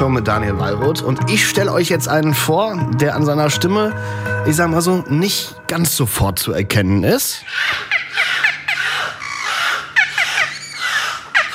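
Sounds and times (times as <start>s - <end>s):
speech: 0.0s - 8.4s
beluga whale squealing chirps and whistles: 7.4s - 11.5s.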